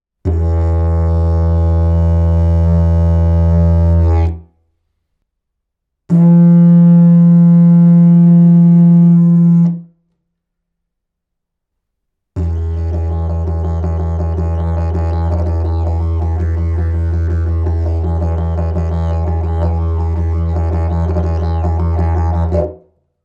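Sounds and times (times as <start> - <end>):
eucalyptus didgeridoo in E: 0.3 - 4.4, 6.1 - 9.8, 12.4 - 22.8.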